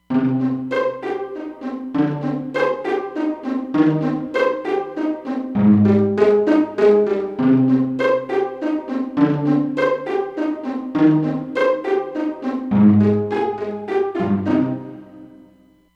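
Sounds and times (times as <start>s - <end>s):
pizzicato violins in hall on Roland Fantom XR: 0.0s - 15.5s.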